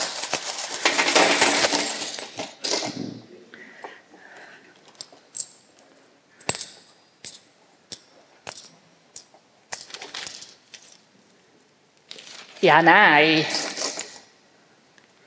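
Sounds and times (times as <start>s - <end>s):
coins being poured or shuffled: 0.0s - 3.0s, 6.4s - 11.0s, 13.5s - 14.3s
coins set down one by one while being counted for a household budget book: 0.0s - 3.0s, 5.0s - 11.0s, 13.4s - 14.3s
speech: 12.6s - 13.6s.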